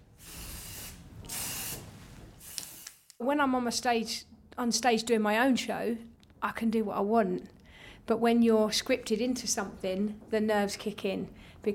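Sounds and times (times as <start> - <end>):
aerosol spray hissing: 0.2 - 3.1
speech: 3.2 - 11.7.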